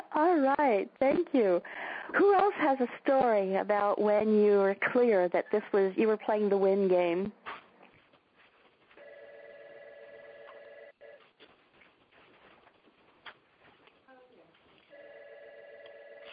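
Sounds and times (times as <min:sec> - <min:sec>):
speech: 0:00.1 - 0:07.4
telephone ringing with an electronic trill: 0:09.0 - 0:11.3, 0:14.9 - 0:16.3.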